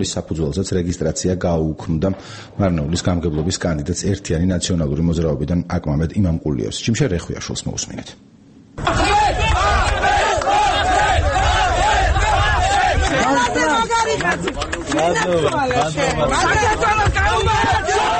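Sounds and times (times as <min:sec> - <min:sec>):
speech: 0:00.0 - 0:09.0, 0:14.2 - 0:18.1
crowd of political supporters shouting and cheering at a court ruling: 0:08.8 - 0:18.1.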